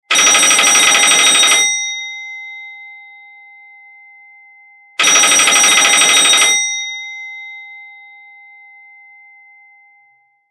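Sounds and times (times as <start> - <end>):
very old rotary phone ringing: 0.1 - 2.0, 5.0 - 6.9.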